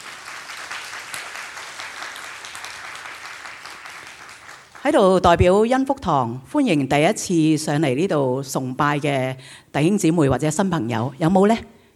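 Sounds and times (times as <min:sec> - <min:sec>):
church congregation applauding during a worship service: 0:00.0 - 0:05.0
speech: 0:04.8 - 0:11.8.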